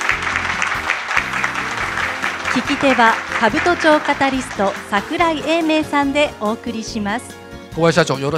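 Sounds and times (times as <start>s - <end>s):
audience applause at a corporate investor presentation: 0.0s - 5.6s
speech: 2.6s - 8.3s.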